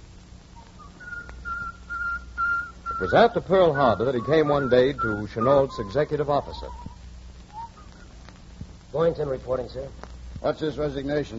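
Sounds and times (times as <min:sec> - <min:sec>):
low rumble: 0:00.0 - 0:11.3
man whistling a tune: 0:00.7 - 0:08.0
speech: 0:03.0 - 0:06.9, 0:08.9 - 0:11.3.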